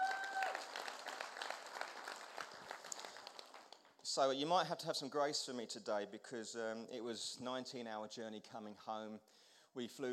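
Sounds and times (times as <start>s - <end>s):
crowd applauding steadily: 0.0s - 3.8s
speech: 4.2s - 10.1s.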